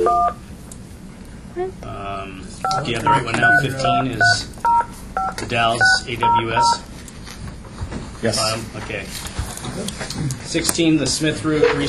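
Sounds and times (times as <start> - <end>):
telephone keypad dialing tone: 0.0 - 0.4, 2.7 - 6.8
speech: 1.6 - 4.6, 5.2 - 6.9, 8.2 - 11.8.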